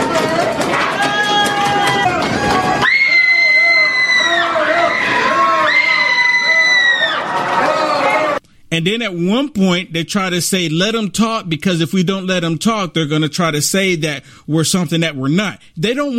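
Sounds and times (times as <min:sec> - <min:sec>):
crowd screaming: 0:00.0 - 0:08.4
speech: 0:08.8 - 0:16.1.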